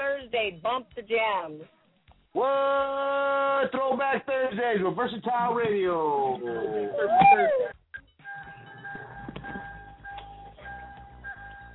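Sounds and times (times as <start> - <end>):
speech: 0.4 - 7.8
car warning bell chiming: 8.0 - 11.7.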